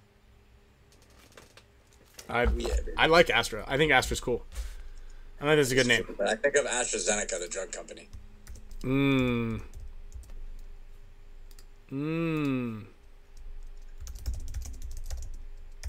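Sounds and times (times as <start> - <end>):
speech: 2.3 - 4.7, 5.4 - 8.2, 8.8 - 9.8, 11.9 - 12.9
computer keyboard typing: 8.4 - 10.7, 11.5 - 11.7, 13.4 - 15.8
person humming: 8.8 - 9.8, 11.9 - 13.0.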